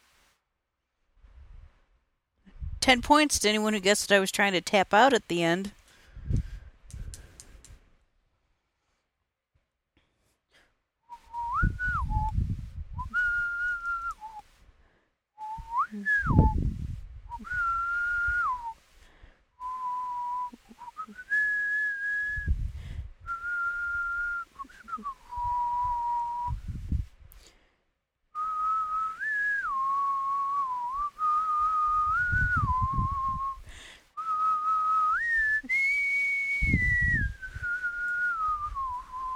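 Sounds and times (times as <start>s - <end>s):
speech: 2.8s - 6.4s
person whistling a simple tune: 11.1s - 14.4s, 15.4s - 16.7s, 17.3s - 18.8s, 19.6s - 22.6s, 23.3s - 26.6s, 28.4s - 33.6s, 34.2s - 39.3s.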